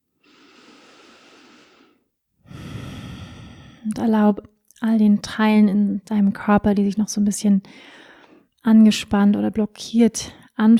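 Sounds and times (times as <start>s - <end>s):
deep slow breaths in and out: 0.2s - 3.9s, 7.7s - 8.5s
speech: 3.8s - 8.0s, 8.6s - 10.7s.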